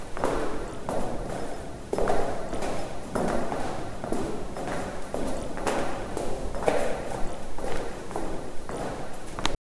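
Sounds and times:
footsteps echoing with hall reverb: 0.0 - 9.5.

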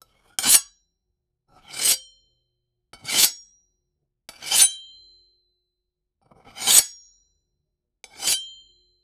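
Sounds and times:
slowed knife cutting metal: 0.4 - 0.7, 1.6 - 2.2, 3.0 - 3.6, 4.3 - 5.0, 6.5 - 7.1, 8.1 - 8.8.

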